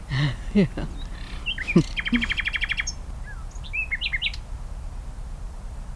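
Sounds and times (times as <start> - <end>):
songbird singing trills, whistled phrases and chirps: 0.0 - 4.5
soft outdoor background: 0.0 - 5.9
laughter: 0.1 - 2.4
speech: 0.2 - 1.0, 1.7 - 2.4.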